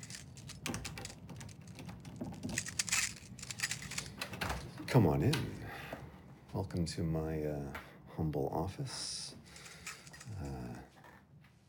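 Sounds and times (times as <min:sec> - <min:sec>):
keys jingling and clinking: 0:00.0 - 0:04.5, 0:09.5 - 0:10.6
speech: 0:04.9 - 0:05.6, 0:06.6 - 0:09.2, 0:10.4 - 0:10.9.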